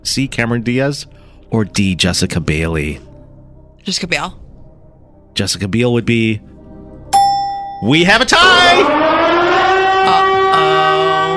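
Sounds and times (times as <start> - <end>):
speech: 0.0 - 3.1, 3.8 - 4.4, 5.4 - 6.5, 7.8 - 9.1
siren sound effect: 8.3 - 11.3.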